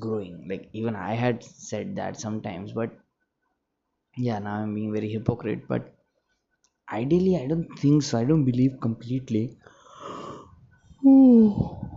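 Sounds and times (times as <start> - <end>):
speech: 0.0 - 3.0, 4.2 - 6.0, 6.9 - 9.7, 11.0 - 11.9
person yawning: 10.0 - 11.9.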